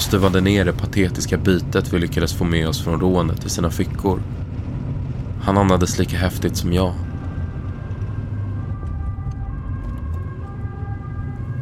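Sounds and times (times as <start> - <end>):
speech: 0.0 - 4.5, 5.4 - 7.1
heavy continuous low rumble: 0.0 - 11.6
police car siren: 7.0 - 11.6.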